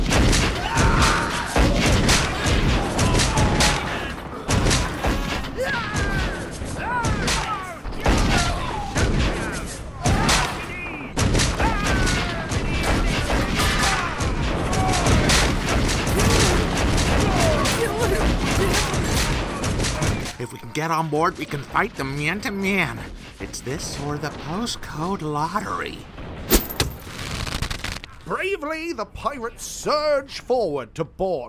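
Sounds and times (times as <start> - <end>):
musket fire from soldiers in a ship's topsails: 0.0 - 20.4, 26.0 - 28.2
speech: 20.8 - 26.2, 28.3 - 31.4.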